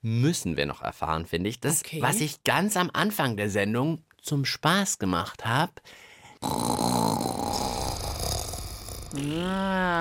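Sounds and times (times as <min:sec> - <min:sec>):
speech: 0:00.0 - 0:07.0, 0:09.1 - 0:10.0
person imitating a loud rattling snore: 0:06.4 - 0:10.0.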